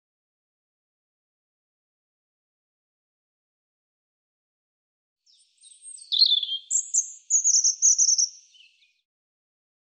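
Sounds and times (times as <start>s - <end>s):
European robin singing a warble and high shimmering trill: 5.3s - 9.0s.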